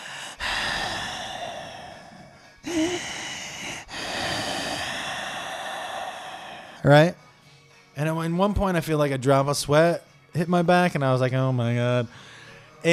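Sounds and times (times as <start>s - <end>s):
voice imitating heavy labored raspy breathing: 0.0s - 6.8s
speech: 6.8s - 7.2s, 8.0s - 12.9s.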